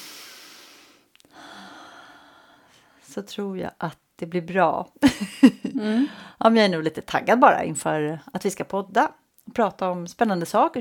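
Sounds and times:
deep breathing: 0.0 - 3.1, 5.8 - 6.4
speech: 3.1 - 10.7.

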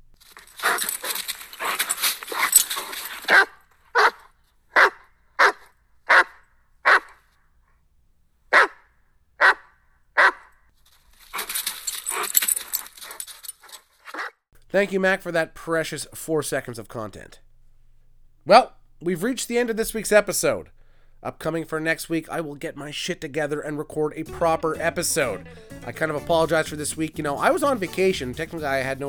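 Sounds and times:
rustling jangling microphone handling noise: 0.2 - 3.2
dog barking into a microphone: 3.3 - 4.2, 4.8 - 7.1, 8.5 - 8.8, 9.4 - 10.4
speech: 14.8 - 17.4, 18.5 - 29.0.

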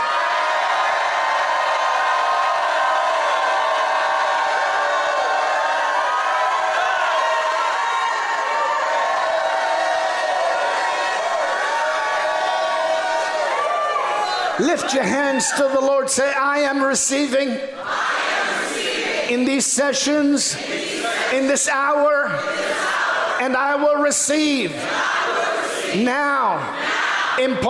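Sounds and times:
large audience at a religious service shouting and cheering: 0.0 - 27.6
speech: 14.6 - 18.0, 19.3 - 27.6.

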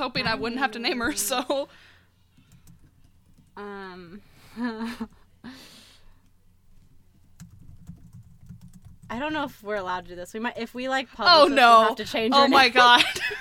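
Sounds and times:
speech: 0.0 - 1.9, 3.6 - 5.7, 9.1 - 13.4
typing on a computer keyboard: 2.4 - 3.6, 7.3 - 9.2.

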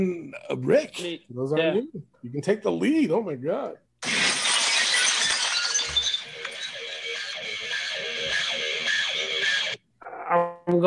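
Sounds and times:
speech: 0.0 - 4.2, 10.3 - 10.8
glass shattering opening a wrestler's entrance theme: 4.0 - 9.7.

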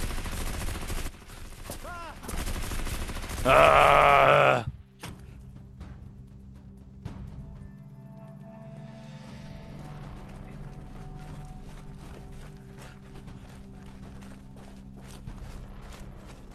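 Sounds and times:
loud rapid bursts of gunfire: 0.0 - 3.9
tense dramatic music: 0.0 - 16.5.

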